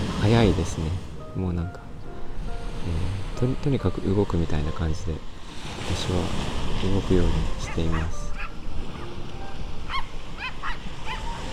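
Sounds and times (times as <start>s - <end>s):
speech: 0.3s - 1.8s, 2.8s - 8.2s
dog barking: 7.6s - 9.2s, 9.8s - 11.5s.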